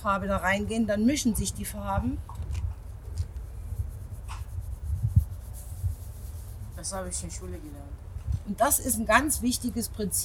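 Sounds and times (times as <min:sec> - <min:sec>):
speech: 0:00.0 - 0:02.6, 0:06.8 - 0:10.2
chalk strokes going over a drawing: 0:02.7 - 0:07.9.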